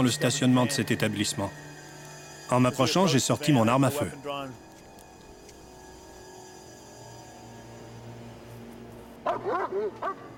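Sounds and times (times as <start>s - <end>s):
speech: 0.0s - 1.8s, 2.5s - 4.7s
police dog barking beside a van in a hotel parking lot: 9.2s - 10.3s.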